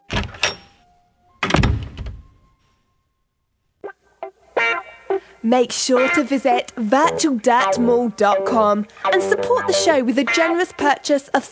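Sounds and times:
door latch clicks and rattles: 0:00.0 - 0:00.8, 0:01.4 - 0:02.4
door opening and thudding shut: 0:00.0 - 0:02.6
speech: 0:05.4 - 0:11.5.

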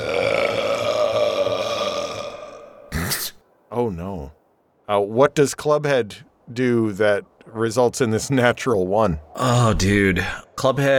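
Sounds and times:
long loud resonant burp: 0:00.0 - 0:03.2
speech: 0:04.9 - 0:10.9.

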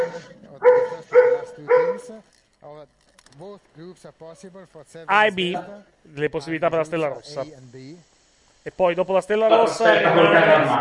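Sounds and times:
dog barking: 0:00.0 - 0:02.1
speech: 0:03.8 - 0:10.7.

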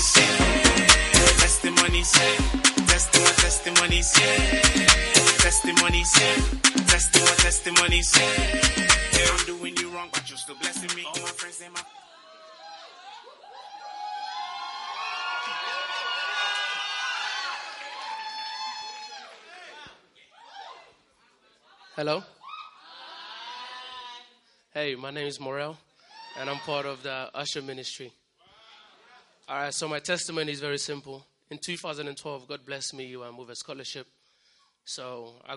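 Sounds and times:
pounding musical beat: 0:00.0 - 0:11.8
crowd clapping and cheering at testimony time: 0:00.0 - 0:11.9, 0:14.2 - 0:19.4
speech: 0:02.0 - 0:12.0, 0:22.0 - 0:22.4, 0:24.8 - 0:28.2, 0:29.5 - 0:34.2, 0:34.8 - 0:35.5.

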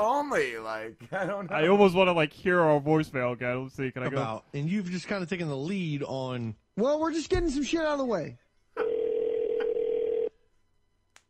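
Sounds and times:
speech: 0:00.0 - 0:08.9
telephone dial tone: 0:08.8 - 0:10.3.

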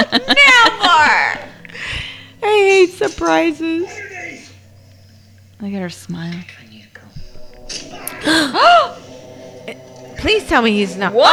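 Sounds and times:
laughter: 0:00.0 - 0:04.5, 0:07.7 - 0:11.3
person gasping: 0:01.6 - 0:02.4, 0:07.9 - 0:09.8
speech: 0:03.0 - 0:04.0, 0:05.6 - 0:06.6, 0:08.2 - 0:08.9, 0:09.7 - 0:11.3.

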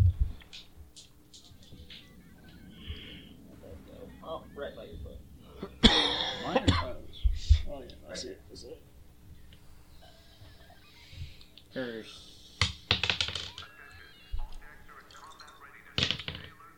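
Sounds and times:
people talking quietly: 0:00.4 - 0:12.7, 0:13.4 - 0:16.7
dice clattering on a tabletop: 0:12.6 - 0:13.7, 0:15.9 - 0:16.5.

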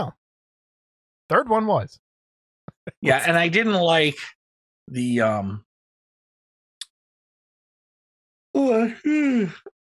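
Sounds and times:
speech: 0:01.3 - 0:02.0, 0:03.0 - 0:05.7, 0:08.6 - 0:09.7
drawn-out yawn with a groaning voiced tone: 0:08.6 - 0:09.7.

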